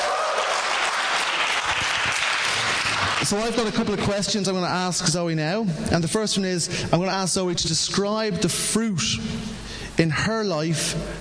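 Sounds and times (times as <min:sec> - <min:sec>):
room full of people applauding: 0:00.0 - 0:03.4
speech: 0:03.3 - 0:11.1.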